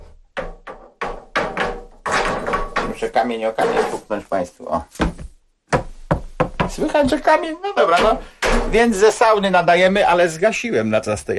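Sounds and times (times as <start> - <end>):
wooden sauna door slamming shut: 0.4 - 4.1, 8.0 - 9.1
speech: 3.0 - 5.2, 6.7 - 11.3.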